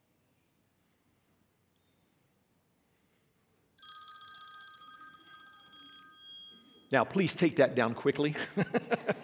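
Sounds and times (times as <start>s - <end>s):
phone ringing during a service: 3.8s - 7.1s
speech: 6.9s - 9.2s
laughter: 8.3s - 9.2s.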